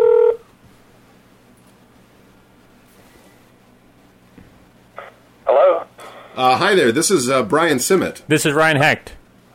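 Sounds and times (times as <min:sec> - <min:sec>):
electronic telephone ring tone over the line: 0:00.0 - 0:00.4
speech: 0:06.4 - 0:09.2.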